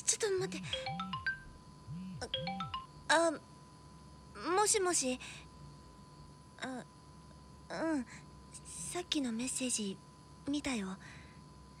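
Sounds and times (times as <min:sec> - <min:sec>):
faint low hum: 0:00.0 - 0:11.7
speech: 0:00.2 - 0:01.2, 0:03.1 - 0:03.5, 0:04.6 - 0:05.5, 0:06.6 - 0:06.9, 0:07.7 - 0:08.3, 0:08.9 - 0:11.2
phone ringtone with bright electronic melody notes: 0:00.5 - 0:01.5, 0:02.2 - 0:02.9.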